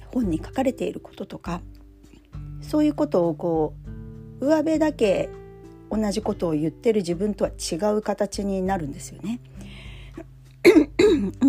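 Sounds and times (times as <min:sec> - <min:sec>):
speech: 0:00.1 - 0:01.8, 0:02.6 - 0:03.8, 0:04.4 - 0:11.4
single person coughing: 0:10.6 - 0:11.4.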